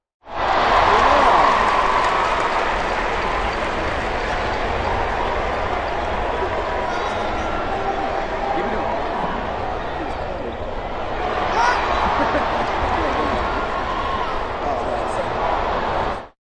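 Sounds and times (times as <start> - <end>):
arena crowd yelling wildly: 0.3 - 16.4
laughter: 6.1 - 10.6, 11.5 - 15.3.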